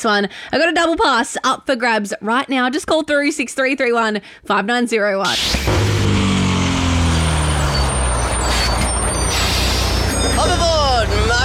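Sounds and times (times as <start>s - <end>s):
speech: 0.0s - 6.0s
bus engine idling with a deep rumble: 5.3s - 11.4s
high whines: 5.3s - 11.4s
bus air brakes hissing: 7.0s - 10.6s.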